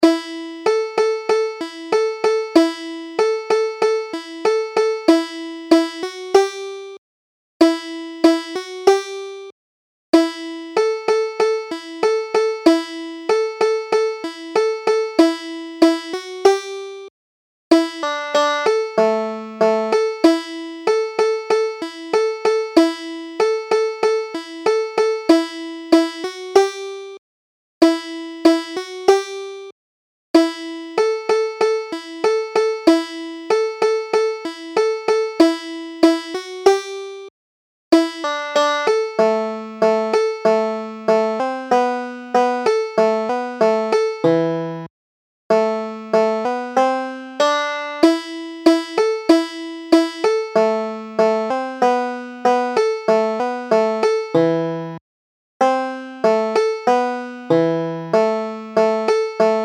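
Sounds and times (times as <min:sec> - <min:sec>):
banjo: 0:00.0 - 0:06.9, 0:07.6 - 0:09.4, 0:10.2 - 0:16.8, 0:17.7 - 0:27.0, 0:27.8 - 0:29.5, 0:30.4 - 0:37.1, 0:38.0 - 0:44.9, 0:45.5 - 0:55.0, 0:55.6 - 0:59.6.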